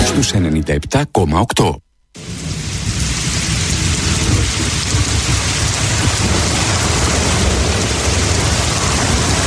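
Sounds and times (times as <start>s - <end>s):
speech: 0.2s - 1.9s
deep continuous rumble of thunder: 2.2s - 9.4s
heavy rain pouring: 2.2s - 9.4s.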